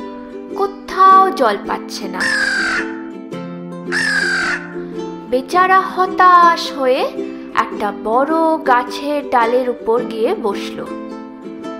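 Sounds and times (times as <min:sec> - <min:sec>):
speech: 0:00.6 - 0:03.0, 0:03.9 - 0:04.3, 0:05.3 - 0:11.0
crow cawing: 0:02.2 - 0:03.0, 0:03.9 - 0:04.9.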